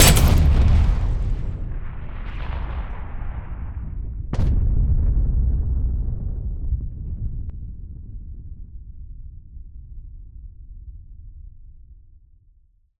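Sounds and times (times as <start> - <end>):
howitzer shot: 0.0 - 2.4
distant explosion: 0.0 - 7.5.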